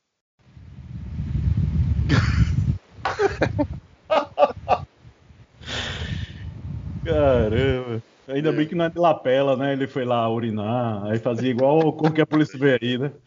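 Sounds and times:
electric fan blowing into a microphone: 0.4s - 9.6s
laughter: 2.1s - 4.8s, 11.1s - 12.9s
speech: 7.2s - 13.2s.

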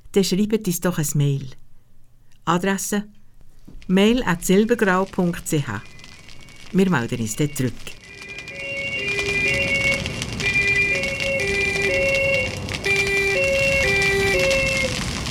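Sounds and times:
speech: 0.2s - 1.6s, 2.4s - 3.2s, 3.9s - 6.0s, 6.7s - 8.0s
hiss of rain or traffic noise: 4.1s - 15.2s
two-tone emergency vehicle siren: 5.8s - 15.2s.

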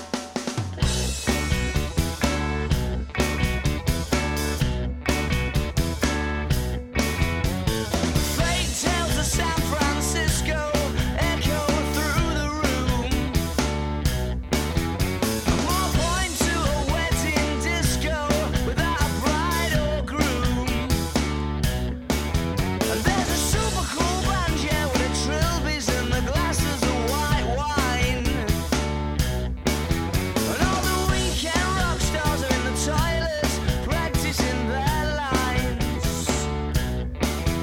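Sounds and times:
indie rock song with drums bass and guitars: 0.0s - 37.6s
male voice singing: 8.3s - 13.4s, 15.5s - 21.3s, 22.8s - 28.7s, 30.4s - 36.6s.

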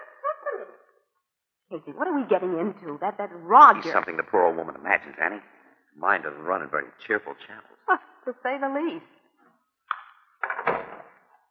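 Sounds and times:
speech: 1.7s - 9.2s
door rattling and scraping as it swings open: 10.4s - 11.2s.

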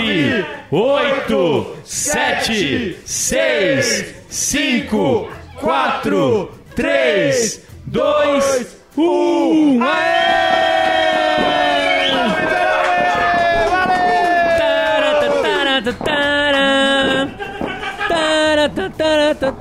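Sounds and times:
speech: 0.1s - 10.4s
group of voices mimicking a firework rocket whistle at a New Year countdown: 11.4s - 12.6s
laughter: 11.4s - 19.6s.

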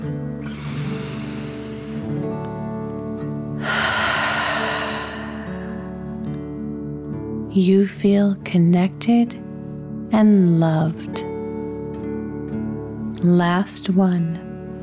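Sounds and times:
deep dragon breath breathing in and out during a guided breathing exercise: 0.4s - 2.7s, 3.5s - 6.7s
sustained musical drone: 0.4s - 6.8s
speech: 7.6s - 9.4s, 10.1s - 11.3s, 13.2s - 14.4s.

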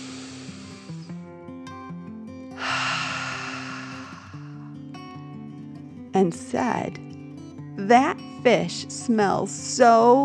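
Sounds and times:
deep human breath in and out: 0.0s - 1.2s, 2.6s - 4.8s
speech: 6.2s - 7.1s, 7.8s - 10.2s.

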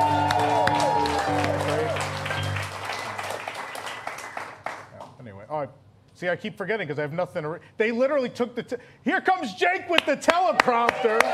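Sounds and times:
live audience overlapping voices: 0.0s - 5.0s
live audience scattered clapping: 0.0s - 5.1s
speech: 5.6s - 11.3s.

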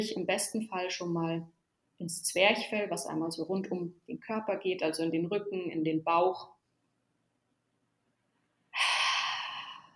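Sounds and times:
speech: 0.0s - 6.5s
deep airy breath in and out: 8.7s - 9.9s.

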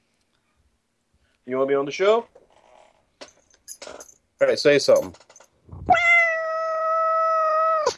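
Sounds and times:
speech: 1.5s - 2.4s, 4.4s - 5.2s
domestic cat meowing on owner's lap: 5.8s - 7.9s.

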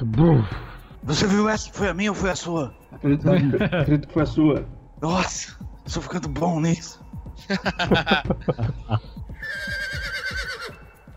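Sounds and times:
speech: 0.0s - 9.9s
laughter: 3.3s - 4.1s, 7.4s - 9.1s
horse whinnying: 9.4s - 11.0s.

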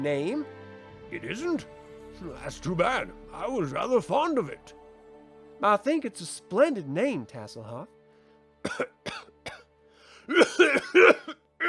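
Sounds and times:
speech: 0.0s - 4.8s, 5.6s - 8.0s, 8.6s - 9.0s, 10.3s - 11.6s
man coughing harshly with rasping chesty coughs: 8.6s - 11.6s.

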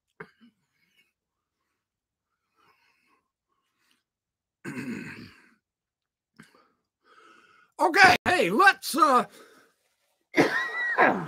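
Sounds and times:
hacking cough with raspy wheeze: 4.6s - 5.6s, 10.4s - 11.2s
speech: 7.8s - 9.5s, 11.0s - 11.2s.

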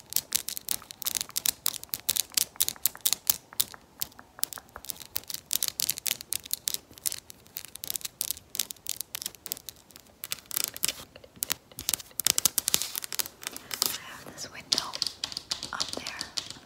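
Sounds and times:
soft scratchy rustling: 0.0s - 16.6s
fast fingernail tapping on a hard surface: 0.1s - 14.0s, 14.6s - 16.6s.

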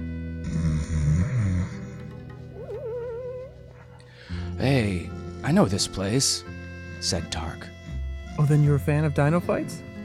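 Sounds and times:
man lying on his side snoring: 0.3s - 2.1s
speech: 4.6s - 7.8s, 8.4s - 9.9s.

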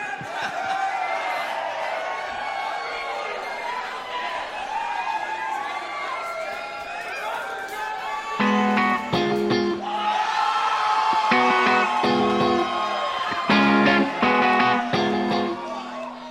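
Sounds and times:
large concert crowd cheering and yelling: 0.0s - 16.2s.

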